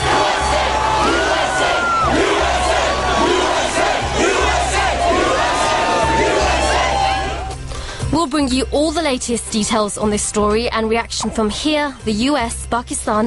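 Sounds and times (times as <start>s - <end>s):
large crowd cheering and chanting outdoors: 0.0s - 7.6s
speech: 8.2s - 13.2s.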